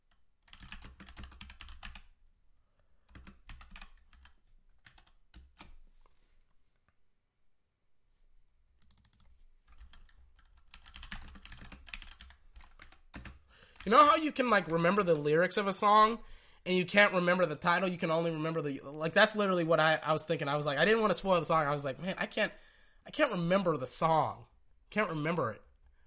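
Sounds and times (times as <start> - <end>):
typing on a computer keyboard: 0.1 - 2.1, 3.1 - 5.8, 8.8 - 13.8
speech: 13.8 - 25.6.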